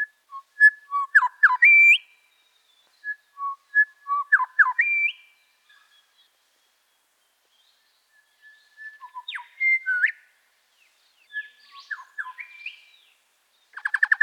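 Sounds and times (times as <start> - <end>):
grey shrike-thrush song of rich whistled phrases: 0.0 - 2.2, 2.8 - 10.3, 11.2 - 14.2.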